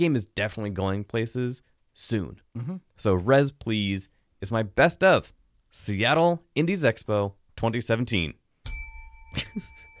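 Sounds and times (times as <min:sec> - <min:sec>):
speech: 0:00.0 - 0:08.4, 0:09.3 - 0:09.9
shame bell ding with sustained metallic ring: 0:08.6 - 0:09.9.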